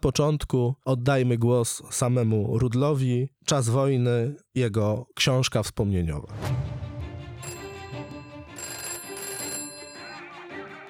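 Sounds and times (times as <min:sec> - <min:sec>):
speech: 0:00.0 - 0:06.8
telephone bell ringing: 0:07.4 - 0:10.4.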